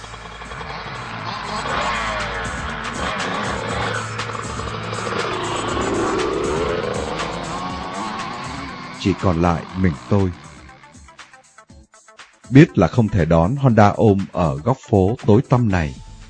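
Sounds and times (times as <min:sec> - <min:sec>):
tire squeal: 0:00.0 - 0:11.0
four car engines revving, roaring off at speed: 0:00.0 - 0:11.4
speech: 0:09.0 - 0:10.4, 0:12.5 - 0:16.0.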